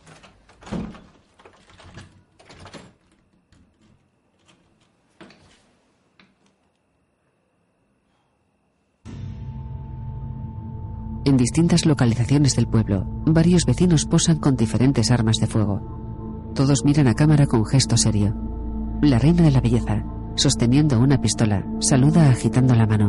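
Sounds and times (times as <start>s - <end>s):
bedroom door shutting with rattling thumps: 0.0s - 3.1s
key turning in lock: 0.0s - 4.7s
loud humming drone: 9.1s - 23.0s
speech: 11.3s - 16.0s, 16.6s - 23.0s.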